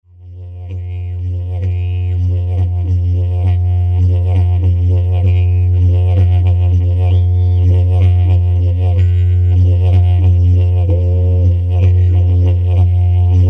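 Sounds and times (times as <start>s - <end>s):
small leather didgebox drone in F sharp: 0.0s - 13.4s.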